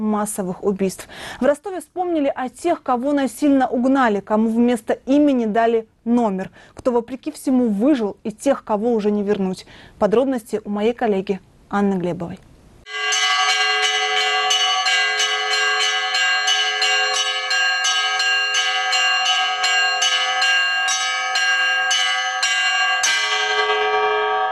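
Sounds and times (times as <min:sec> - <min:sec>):
speech: 0:00.0 - 0:12.5
church bells pealing after Sunday liturgy: 0:12.9 - 0:24.5.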